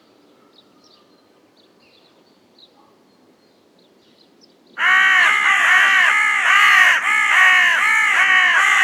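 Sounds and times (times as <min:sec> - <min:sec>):
Carrion crow Corvus corone cawing: 0:04.8 - 0:08.8.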